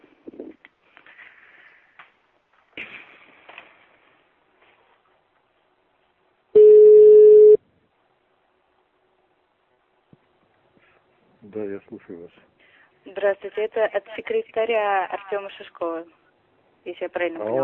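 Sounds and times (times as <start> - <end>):
telephone ringback tone as a call is placed: 6.6 - 7.6
speech: 12.1 - 12.5, 13.1 - 16.2, 16.8 - 17.6.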